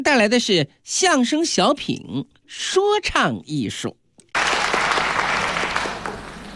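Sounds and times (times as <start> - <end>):
speech: 0.0 - 4.0
crowd applauding a xiangsheng comedy act: 4.3 - 6.5.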